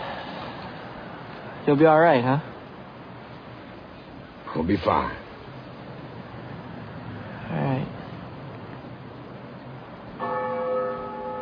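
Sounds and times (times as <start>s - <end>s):
speech: 1.6s - 2.5s, 4.6s - 5.2s
single bell ringing: 10.2s - 11.4s.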